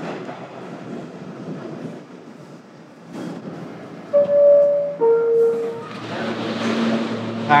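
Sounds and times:
train rumbling along the rails: 0.0 - 7.5
loud tonal horn-like blasts or brake squeals: 4.1 - 7.5.

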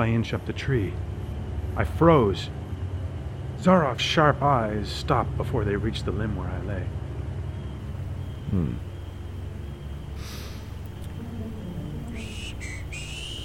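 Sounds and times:
speech: 0.0 - 1.1, 1.8 - 2.6, 3.6 - 7.0, 8.5 - 8.9
steady low rumble: 0.0 - 13.4
breathy snort: 10.2 - 10.8
man whistling a tune: 10.2 - 13.4.

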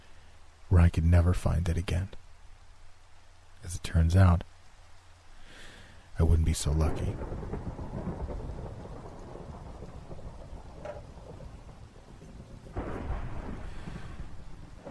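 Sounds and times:
steady rain: 0.0 - 14.8
speech: 0.7 - 2.2, 3.6 - 4.5, 6.2 - 7.8
thunder rumbling: 6.2 - 14.8.

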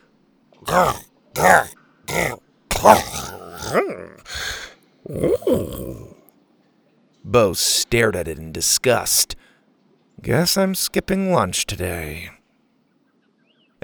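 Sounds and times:
cartoon T. rex strained grunts during Heimlich squeezes: 0.6 - 6.2
speech: 0.7 - 4.2, 5.1 - 6.1, 7.2 - 9.4, 10.2 - 12.4
cartoon T. rex gurgling belching roar: 0.7 - 6.2
cartoon T. rex throaty burp: 0.7 - 6.2.

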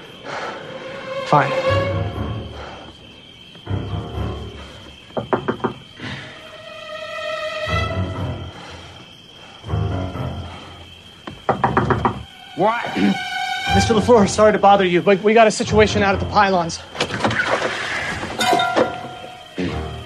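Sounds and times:
faint chirping night ambience: 0.0 - 20.0
speech: 1.3 - 1.7, 12.6 - 17.0
quick firm knocks on a door: 5.2 - 5.8, 11.3 - 12.3.

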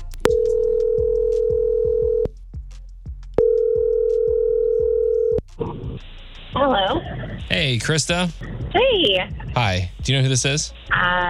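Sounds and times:
telephone ringback tone on an outgoing call: 0.3 - 2.3, 3.4 - 5.4
speech: 7.6 - 11.2.

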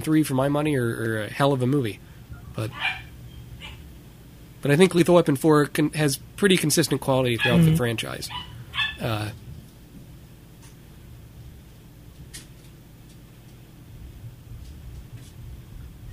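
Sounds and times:
speech: 0.0 - 3.1, 4.6 - 9.4
puppy yelping: 2.7 - 3.8, 7.4 - 9.0.

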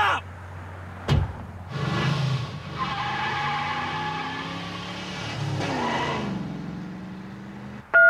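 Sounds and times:
arriving car engine droning with a whiny squealing tone: 0.2 - 7.9
sharp knock: 1.1 - 1.5.

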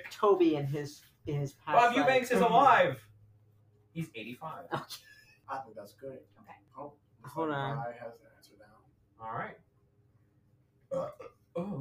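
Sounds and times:
speech: 0.1 - 3.1, 4.0 - 8.3, 9.2 - 9.6, 10.9 - 11.7
loud burp: 10.9 - 11.7.

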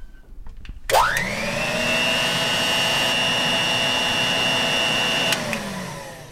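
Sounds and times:
tank vacuum cleaner switch click: 0.9 - 1.4, 5.1 - 6.0
Kenmore Commander tank vacuum cleaner motor starting up with rising whine: 0.9 - 6.3.

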